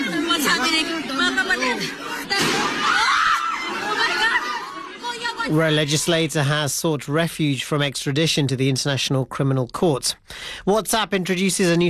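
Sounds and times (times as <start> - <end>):
crowd of people shouting and screaming: 0.0 - 6.2
speech: 0.7 - 3.0, 5.4 - 11.8
single sharp gunshot-like bang: 2.4 - 2.8.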